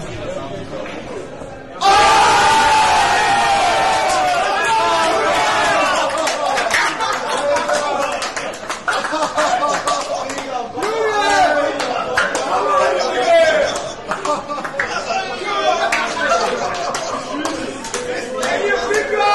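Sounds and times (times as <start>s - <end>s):
crowd cheering and whooping at a darts match after a nine-dart finish: 1.8s - 8.3s
laughter: 5.6s - 19.1s.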